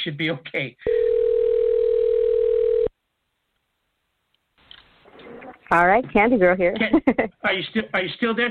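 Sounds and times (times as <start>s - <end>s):
speech: 0.0s - 1.0s, 5.7s - 8.4s
noise: 0.0s - 8.4s
telephone dial tone while calling back after a dropped call: 0.9s - 2.9s
laughter: 6.8s - 7.4s.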